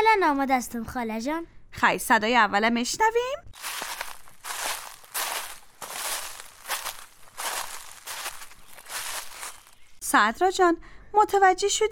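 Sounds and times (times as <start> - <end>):
speech: 0.0 - 3.8, 10.1 - 11.8
footsteps walking on dry tree leaves: 3.5 - 9.9.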